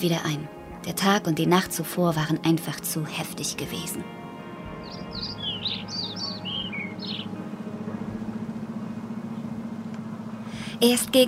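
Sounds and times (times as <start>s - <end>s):
speech: 0.0s - 4.2s, 10.8s - 11.2s
steady low engine-like rumble: 0.1s - 11.2s
sparrows chirping and squabbling: 4.6s - 10.7s.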